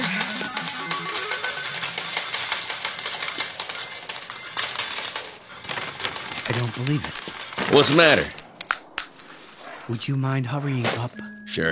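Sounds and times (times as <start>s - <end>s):
slot machine jackpot coins clattering and jingling: 0.0s - 9.8s
speech: 6.5s - 8.4s, 9.9s - 11.7s
faint melodic chime: 11.2s - 11.7s.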